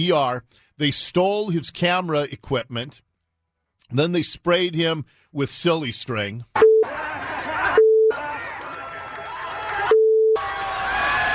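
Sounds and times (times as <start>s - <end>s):
speech: 0.0s - 3.1s, 3.9s - 6.6s
flat electronic beep tone: 6.6s - 6.9s, 9.9s - 10.4s
crowd cheering and shouting after an assault on a cameraman: 6.8s - 11.3s.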